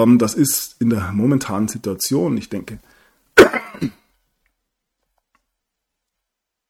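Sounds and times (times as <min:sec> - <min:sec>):
speech: 0:00.0 - 0:03.0, 0:03.8 - 0:04.0
single sharp cough: 0:03.4 - 0:04.1.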